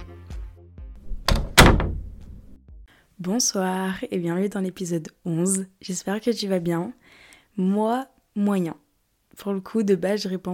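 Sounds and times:
door pushed shut with sharp knocks and rattle: 0:01.0 - 0:02.3
door opening: 0:01.0 - 0:02.6
speech: 0:03.2 - 0:07.0, 0:07.6 - 0:08.8, 0:09.4 - 0:10.5.

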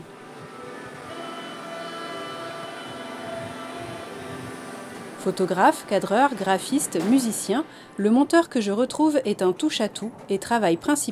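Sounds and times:
faint tonal whines of a metro train: 0:00.0 - 0:08.0
metro rail noise: 0:00.0 - 0:11.1
metro train rumbling on a trip to Tourcoing near Lille, France: 0:00.0 - 0:11.1
speech: 0:05.2 - 0:11.1.

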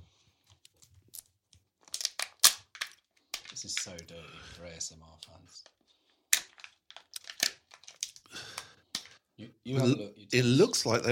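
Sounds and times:
plastic egg wrapper being torn open: 0:01.8 - 0:03.6, 0:06.4 - 0:08.3
speech: 0:03.6 - 0:05.8, 0:09.4 - 0:11.1.

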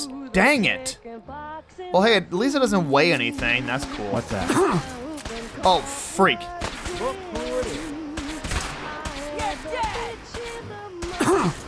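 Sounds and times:
speech: 0:00.0 - 0:05.0, 0:05.6 - 0:07.8
gunfire in a post-apocalyptic shooter video game: 0:05.1 - 0:11.6.

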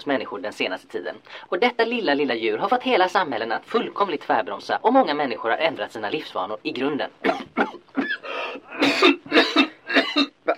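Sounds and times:
speech: 0:00.0 - 0:09.5
person with a cold coughing harshly: 0:07.2 - 0:10.5.

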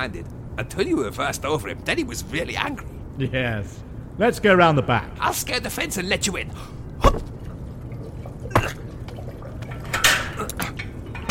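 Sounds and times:
speech: 0:00.0 - 0:07.4
outdoor noise: 0:00.0 - 0:11.3
water trickling and dripping from a garden water feature: 0:07.2 - 0:11.2.

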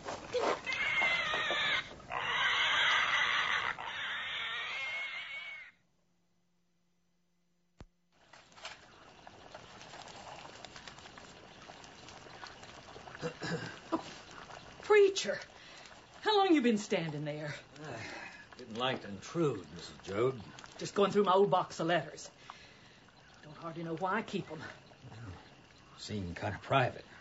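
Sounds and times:
pigs squealing while being killed for butchering: 0:00.4 - 0:05.8
speech: 0:15.2 - 0:15.5, 0:16.2 - 0:18.1, 0:18.7 - 0:22.4, 0:23.6 - 0:24.8, 0:26.0 - 0:27.1.

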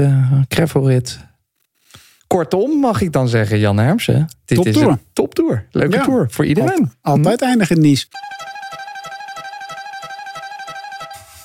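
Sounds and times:
speech: 0:00.0 - 0:01.3, 0:02.3 - 0:08.3
horn honking in rapid pulsing bursts: 0:08.2 - 0:11.4.

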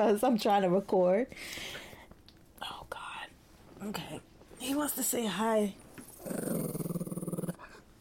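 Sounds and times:
speech: 0:00.0 - 0:01.8, 0:03.8 - 0:06.8
dog growling: 0:06.1 - 0:07.8.

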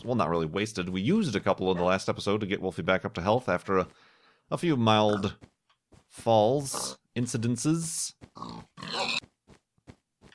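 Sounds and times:
speech: 0:00.0 - 0:05.5, 0:06.1 - 0:09.2
pig squealing snorts and grunts: 0:05.0 - 0:05.4, 0:08.4 - 0:09.3.

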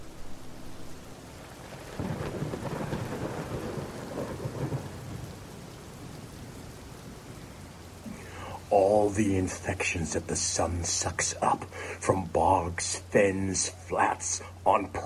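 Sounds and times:
deep roll of thunder: 0:00.0 - 0:11.0
steady rain: 0:00.0 - 0:15.0
speech: 0:08.7 - 0:15.0.

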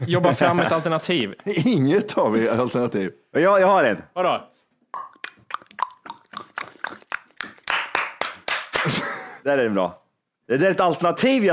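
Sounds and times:
speech: 0:00.0 - 0:05.1, 0:08.8 - 0:11.5
hollow mouth clicks and pops: 0:04.9 - 0:08.5
hand claps: 0:05.0 - 0:09.1.

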